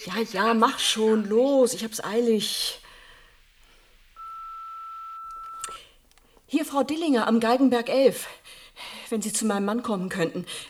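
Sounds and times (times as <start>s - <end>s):
speech: 0.0s - 2.8s, 6.5s - 10.6s
quiet telephone line hiss: 4.0s - 5.8s
automatic answering machine beep of a doctor's practice: 4.2s - 5.7s.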